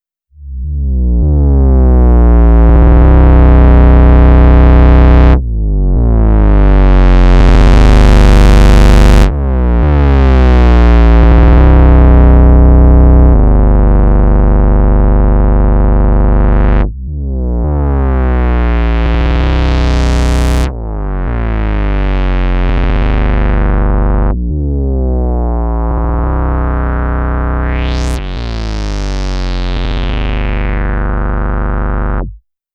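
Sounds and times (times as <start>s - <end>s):
synthesizer bass with pitch envelope: 0.3s - 32.4s.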